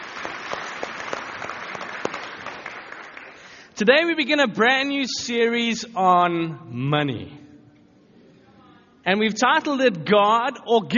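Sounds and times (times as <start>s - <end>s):
audience applauding: 0.0s - 3.7s
speech: 3.8s - 7.4s, 9.0s - 10.9s.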